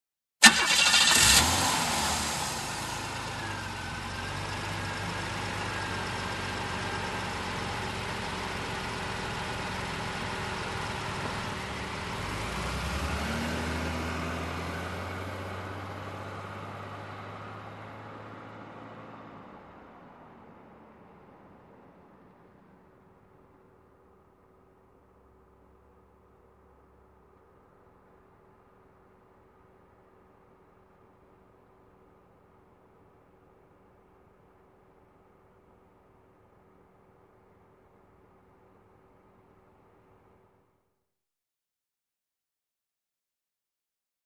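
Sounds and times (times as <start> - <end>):
car engine ignition: 0.4 - 19.5
car driving away: 0.4 - 22.8.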